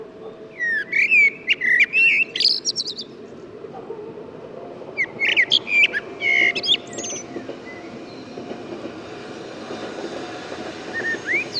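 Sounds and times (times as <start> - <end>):
Turdus merula common blackbird song: 0.2 - 3.5, 5.0 - 8.6, 10.9 - 11.5.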